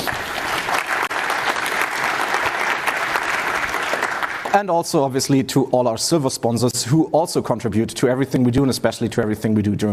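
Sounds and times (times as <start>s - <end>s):
room full of people applauding: 0.0s - 4.6s
speech: 4.5s - 9.9s.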